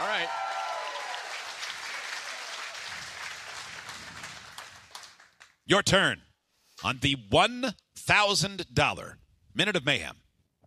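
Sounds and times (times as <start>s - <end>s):
crowd clapping: 0.0s - 5.6s
speech: 5.7s - 6.2s, 6.8s - 10.2s.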